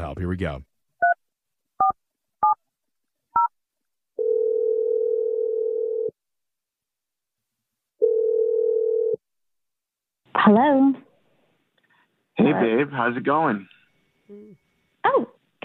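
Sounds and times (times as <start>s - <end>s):
speech: 0.2s - 0.7s, 10.3s - 11.0s, 12.4s - 13.7s, 14.3s - 15.6s
phone ringing tone as a call is placed: 4.2s - 6.1s, 8.0s - 9.2s.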